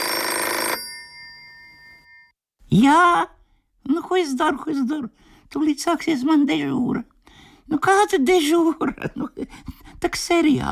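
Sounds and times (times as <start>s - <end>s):
telephone bell ringing: 0.0s - 2.4s
speech: 2.7s - 7.1s, 7.7s - 10.7s.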